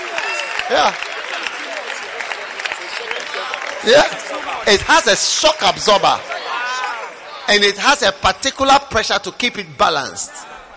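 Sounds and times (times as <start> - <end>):
audience clapping: 0.0 - 7.2
speech: 0.7 - 1.1, 3.8 - 6.4, 7.5 - 10.4.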